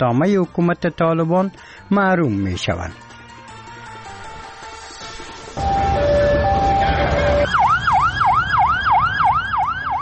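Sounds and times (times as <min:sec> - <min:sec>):
speech: 0:00.0 - 0:03.0
steady horn-like tones: 0:05.6 - 0:07.5
ambulance siren wailing at a crowd gathered after a killing: 0:05.6 - 0:10.0.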